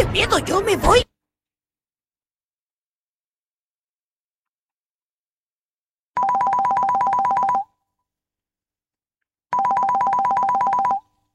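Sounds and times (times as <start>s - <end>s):
speech: 0.2s - 1.0s
telephone ringing with an incoming call: 6.2s - 7.8s, 9.5s - 11.3s.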